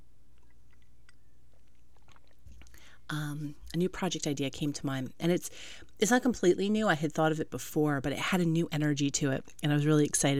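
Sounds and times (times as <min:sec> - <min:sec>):
small swallows of tea: 0:00.4 - 0:03.1
person sipping tea with soft wet mouth clicks: 0:00.4 - 0:03.7
speech: 0:03.1 - 0:10.3.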